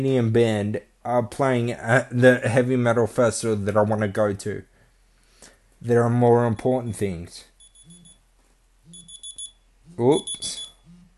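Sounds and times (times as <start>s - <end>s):
speech: 0.0s - 4.7s, 5.8s - 7.5s, 10.0s - 10.6s
electronic alarm clock high-pitched beeps: 7.6s - 8.2s, 8.9s - 11.1s.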